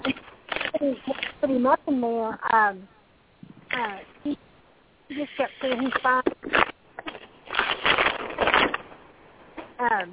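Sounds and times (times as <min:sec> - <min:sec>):
paper rustling and shuffling: 0:00.0 - 0:01.4, 0:05.2 - 0:09.0
speech: 0:00.8 - 0:03.0, 0:03.8 - 0:04.4, 0:05.1 - 0:06.2, 0:09.9 - 0:10.1.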